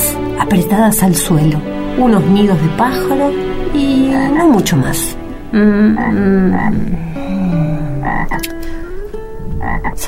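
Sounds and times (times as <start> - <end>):
speech: 0.4 - 8.8, 9.6 - 10.0
toad croaking: 3.3 - 10.0.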